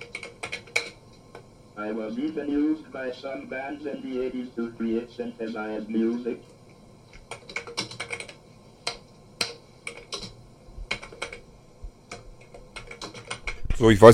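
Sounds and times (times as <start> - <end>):
typing text on a computer keyboard: 0.0 - 1.0, 7.1 - 11.4, 12.1 - 13.6
speech: 1.8 - 6.6, 13.8 - 14.1.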